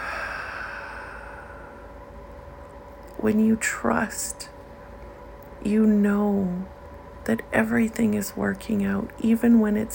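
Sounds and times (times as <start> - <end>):
deep drawn-out exhale during a guided breathing meditation: 0.0 - 2.0
speech: 3.2 - 4.5, 5.6 - 9.9.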